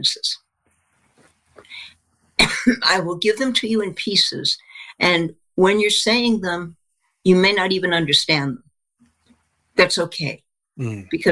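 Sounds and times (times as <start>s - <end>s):
speech: 0.0s - 0.4s, 1.6s - 8.6s, 9.8s - 11.3s
single person coughing: 2.4s - 2.9s.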